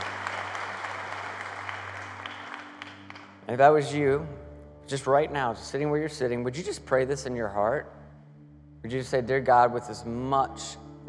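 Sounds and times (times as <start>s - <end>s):
church congregation applauding: 0.0s - 3.5s
speech: 3.5s - 8.0s, 8.8s - 11.0s.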